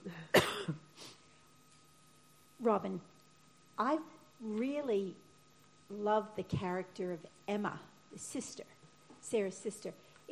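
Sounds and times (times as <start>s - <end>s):
person coughing into a microphone: 0.2s - 0.9s
speech: 2.6s - 3.1s, 3.8s - 5.2s, 5.9s - 10.3s.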